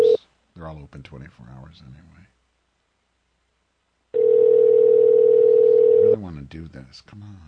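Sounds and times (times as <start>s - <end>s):
speech: 0.8s - 2.4s, 6.1s - 7.4s
telephone dial tone while placing a call: 4.2s - 6.2s.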